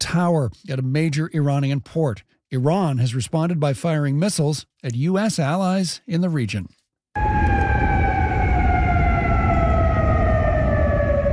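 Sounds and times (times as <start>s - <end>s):
speech: 0.1s - 7.4s
air raid siren wailing: 7.2s - 11.3s.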